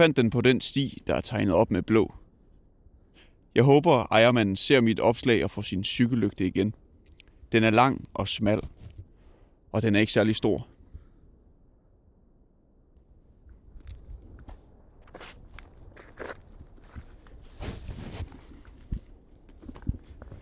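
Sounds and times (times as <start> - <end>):
speech: 0.0 - 2.2, 3.6 - 6.8, 7.5 - 8.8, 9.7 - 10.7
footsteps crunching along a marked forest trail: 13.7 - 20.4.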